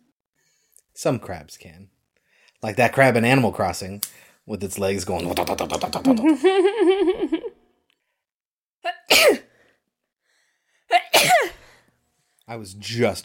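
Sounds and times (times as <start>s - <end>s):
speech: 1.0s - 2.0s, 2.6s - 7.6s, 9.1s - 9.4s, 12.5s - 13.2s
person sneezing: 9.0s - 9.5s, 10.9s - 11.8s.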